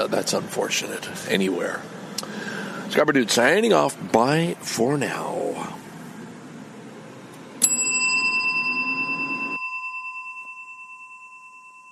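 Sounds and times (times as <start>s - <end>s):
speech: 0.0s - 2.0s, 2.9s - 5.8s
low rumble: 0.0s - 11.2s
bell strike with lingering ringing tone: 7.6s - 11.9s.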